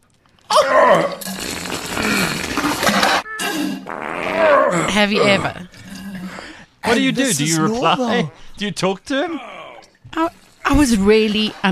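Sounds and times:
loud raspy sputtering fart: 0:00.6 - 0:05.0
speech: 0:05.0 - 0:05.8, 0:06.9 - 0:09.5, 0:10.1 - 0:11.7.

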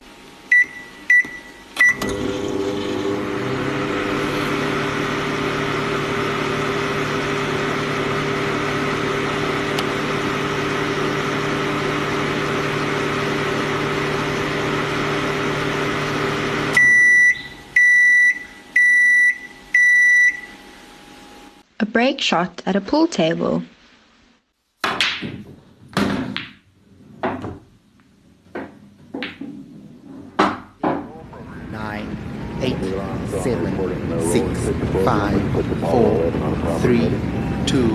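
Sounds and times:
microwave oven humming steadily: 0:00.0 - 0:21.6, 0:30.4 - 0:37.9
microwave oven beeping as buttons are pressed: 0:00.5 - 0:02.1, 0:16.8 - 0:20.6
microwave oven loud finishing beeps: 0:16.8 - 0:20.6
speech: 0:22.0 - 0:23.7.

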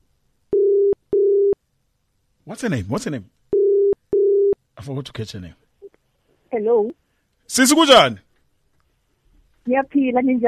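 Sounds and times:
telephone ringing tone on an outgoing call: 0:00.5 - 0:01.6, 0:03.5 - 0:04.6
speech: 0:02.5 - 0:03.4, 0:04.8 - 0:05.6, 0:06.6 - 0:08.3, 0:09.6 - 0:10.4.

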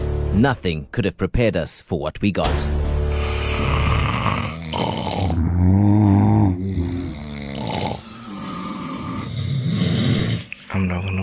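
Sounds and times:
speech: 0:00.4 - 0:02.8
sleeping person snoring loudly at night: 0:03.1 - 0:10.6.

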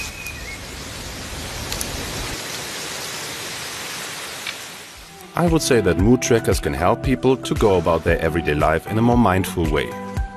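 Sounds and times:
heavy rain: 0:00.0 - 0:05.2
wind: 0:00.0 - 0:05.3
speech: 0:05.4 - 0:10.0.

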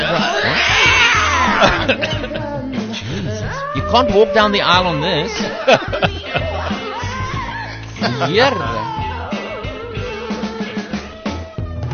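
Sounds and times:
voice imitating a yowling cat within a song: 0:00.0 - 0:01.8, 0:03.4 - 0:05.0, 0:07.0 - 0:11.9
laughter: 0:00.0 - 0:03.5, 0:05.0 - 0:11.1
dense music: 0:00.0 - 0:11.9
speech: 0:01.9 - 0:02.3, 0:03.9 - 0:06.4, 0:08.0 - 0:08.8.

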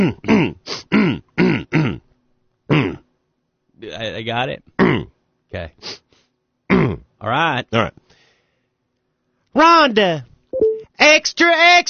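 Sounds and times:
speech: 0:00.0 - 0:00.3, 0:04.2 - 0:06.0, 0:06.9 - 0:08.0, 0:09.6 - 0:11.8
person clearing throat: 0:00.0 - 0:02.1, 0:02.7 - 0:03.1, 0:04.8 - 0:05.2, 0:06.7 - 0:07.1.

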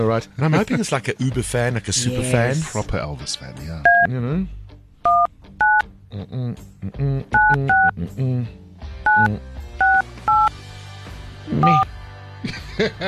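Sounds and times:
speech: 0:00.0 - 0:04.6, 0:06.1 - 0:08.6, 0:09.2 - 0:09.5, 0:11.5 - 0:13.0
telephone keypad two-tone beeps: 0:09.1 - 0:10.5
laughter: 0:12.4 - 0:13.0.

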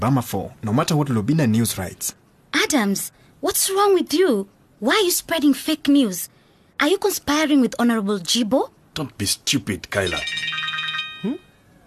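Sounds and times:
speech: 0:00.0 - 0:10.6, 0:11.2 - 0:11.4
mobile phone ringtone for incoming call: 0:10.1 - 0:11.8.

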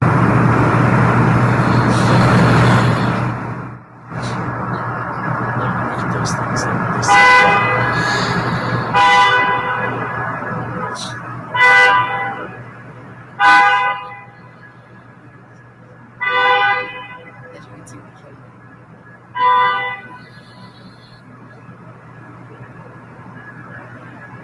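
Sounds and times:
constant low rumble of idling engines: 0:00.0 - 0:24.4
outdoor street noise: 0:00.0 - 0:24.4
parked driverless car horns honking: 0:01.1 - 0:03.5, 0:04.2 - 0:15.1, 0:16.2 - 0:17.6, 0:19.3 - 0:21.3.

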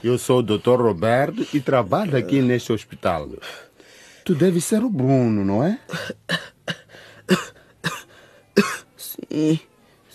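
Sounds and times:
speech: 0:00.0 - 0:06.5, 0:07.3 - 0:07.5, 0:09.3 - 0:10.1
person coughing harshly: 0:05.9 - 0:08.9.

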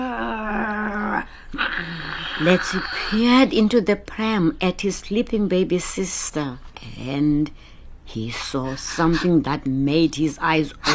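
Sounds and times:
brief breathy vocal sound: 0:00.0 - 0:03.1
human voice imitating a dog's soft low growl: 0:00.0 - 0:03.2
speech: 0:01.5 - 0:10.9.

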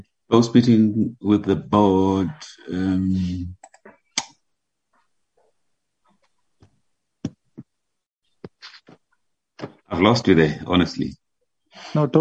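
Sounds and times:
speech: 0:00.3 - 0:03.6, 0:09.9 - 0:11.2, 0:11.8 - 0:12.1
keyboard typing: 0:03.6 - 0:04.3.

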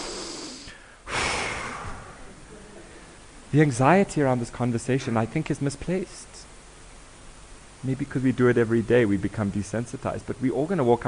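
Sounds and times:
group of people in a room inhaling together: 0:00.0 - 0:03.3
speech: 0:03.5 - 0:06.4, 0:07.8 - 0:11.0.

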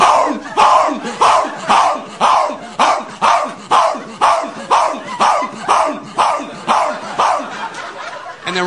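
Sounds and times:
laughter: 0:00.0 - 0:08.6
dog barking: 0:01.2 - 0:07.7.

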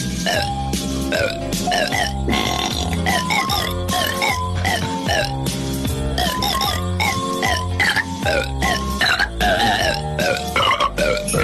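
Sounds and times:
burping a festive Christmas melody: 0:00.2 - 0:05.5, 0:06.2 - 0:11.4.

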